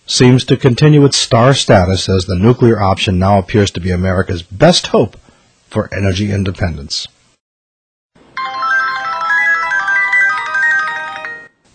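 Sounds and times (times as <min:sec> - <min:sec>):
speech: 0:00.1 - 0:07.2
electronic cell phone ringtone with melodic trill: 0:08.4 - 0:11.7.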